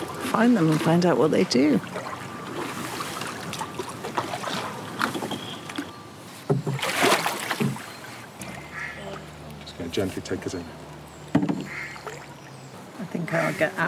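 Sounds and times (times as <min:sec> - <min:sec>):
canoe paddle strokes swishing through water: 0:00.0 - 0:08.9
gentle water trickling: 0:00.0 - 0:13.8
speech: 0:00.3 - 0:02.0, 0:10.0 - 0:10.9, 0:13.3 - 0:13.8.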